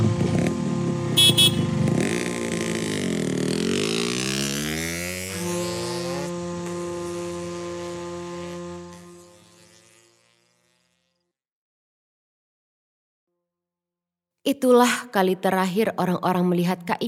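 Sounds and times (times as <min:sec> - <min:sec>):
motorcycle horn toots: 0:00.0 - 0:03.2, 0:05.2 - 0:09.9
motorcycle engine revving and pulling away: 0:00.0 - 0:11.1
speech: 0:14.5 - 0:17.0.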